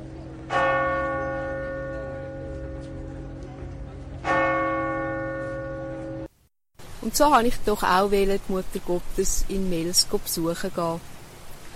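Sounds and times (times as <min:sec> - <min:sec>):
church bell ringing: 0:00.0 - 0:03.4, 0:04.2 - 0:06.3
speech: 0:07.0 - 0:11.1.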